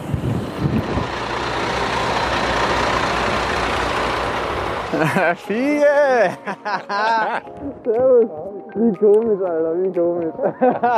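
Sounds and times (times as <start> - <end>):
large vehicle engine drone, like a bus pulling in: 0.0 - 8.0
broadband road noise: 0.0 - 10.9
laughter: 4.9 - 5.4, 6.2 - 7.8, 10.3 - 10.9
speech: 5.0 - 10.9.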